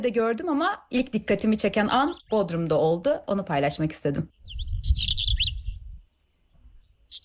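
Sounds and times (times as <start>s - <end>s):
speech: 0.0s - 5.1s
bird singing with creaky plit call: 0.8s - 3.3s, 4.1s - 7.2s.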